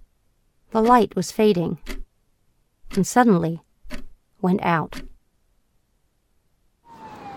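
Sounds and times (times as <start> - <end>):
speech: 0.7 - 2.0, 2.9 - 3.6, 4.4 - 5.1
siren wailing: 6.8 - 7.3.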